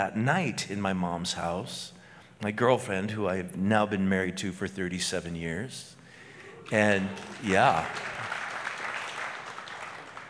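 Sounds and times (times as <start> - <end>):
speech: 0.0 - 6.0, 6.7 - 8.1
audience applause: 6.4 - 10.2.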